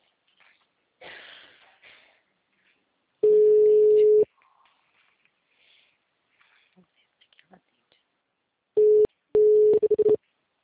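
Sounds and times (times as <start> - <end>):
ringback tones while a mobile phone is called: 3.2 - 4.2, 8.8 - 10.2.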